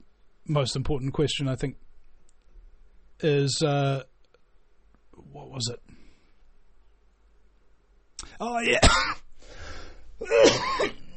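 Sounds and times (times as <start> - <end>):
speech: 0.5 - 1.9, 3.2 - 4.1, 5.2 - 5.9, 8.4 - 9.2
throaty cough: 8.8 - 9.2, 10.2 - 11.1.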